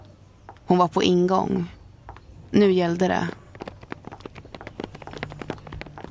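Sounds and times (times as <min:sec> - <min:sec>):
speech: 0:00.7 - 0:01.8, 0:02.5 - 0:03.3
woman's high heels clicking on parking lot asphalt: 0:03.2 - 0:06.0.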